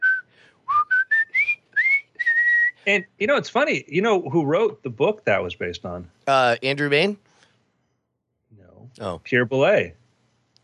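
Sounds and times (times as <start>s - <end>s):
person whistling a short tune of bright notes: 0.0s - 3.1s
speech: 2.9s - 7.3s, 9.0s - 10.0s.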